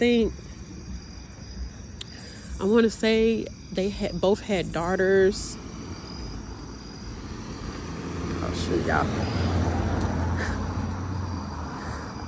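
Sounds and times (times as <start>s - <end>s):
speech: 0.0s - 0.4s, 2.6s - 5.6s, 8.6s - 9.6s
car passing with engine rumble: 5.2s - 12.2s.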